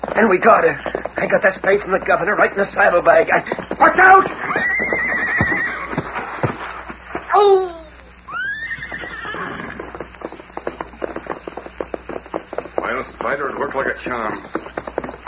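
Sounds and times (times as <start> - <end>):
horse hooves galloping: 0.0 - 15.2
speech: 0.1 - 4.9, 7.4 - 7.7, 14.0 - 14.6
Pony Express rider's horse neighing: 4.2 - 6.6, 8.3 - 10.0.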